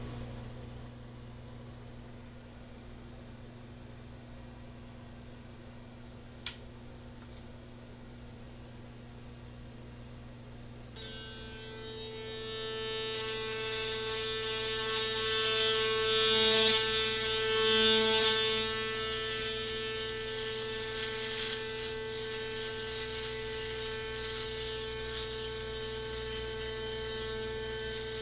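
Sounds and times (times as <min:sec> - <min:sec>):
electric razor buzzing, binaural: 0:11.0 - 0:28.1.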